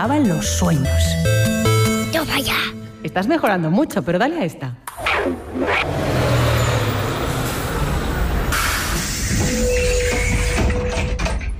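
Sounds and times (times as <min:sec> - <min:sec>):
speech: 0:00.0 - 0:01.5, 0:02.2 - 0:06.2
large school bus engine rumbling as it pulls up: 0:05.5 - 0:11.0.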